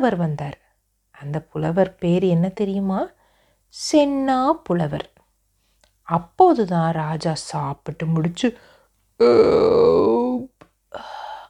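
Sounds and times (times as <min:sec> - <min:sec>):
speech: 0:00.0 - 0:00.6, 0:01.2 - 0:05.1, 0:06.1 - 0:11.1
voice imitating a loud drawn-out burp: 0:09.2 - 0:10.5.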